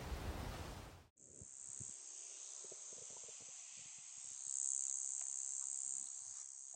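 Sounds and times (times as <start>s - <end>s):
insects buzzing by the ocean on a Great Barrier Reef island: 0.1s - 6.7s.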